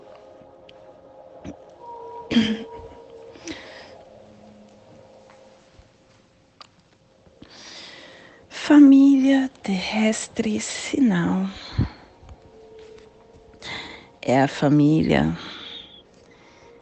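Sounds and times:
speech: 2.3 - 2.7, 9.9 - 11.7, 14.3 - 15.5
person coughing: 2.3 - 3.0
throat clearing: 2.3 - 3.0.

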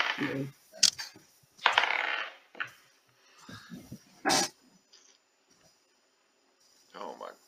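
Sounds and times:
speech: 0.2 - 0.6
dice being rolled across a surface: 1.6 - 2.8.

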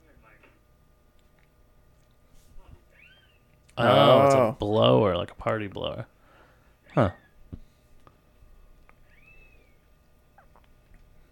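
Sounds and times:
speech: 3.8 - 6.1, 6.9 - 7.2
faint kitten meow: 9.0 - 9.8.

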